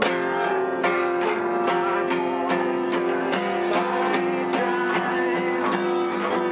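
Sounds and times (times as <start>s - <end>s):
Vox distorted guitar: 0.0s - 6.4s.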